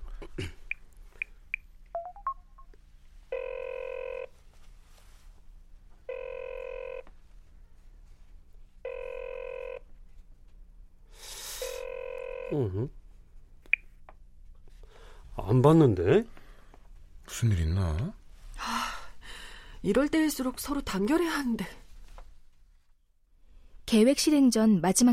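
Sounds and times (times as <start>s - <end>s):
telephone dialing beeps: 2.0s - 2.4s
phone ringback tone: 3.3s - 4.3s, 6.1s - 7.1s, 8.8s - 9.8s, 11.6s - 12.8s
speech: 12.6s - 13.0s, 15.5s - 16.4s, 17.4s - 18.2s, 19.8s - 21.8s, 23.9s - 25.1s.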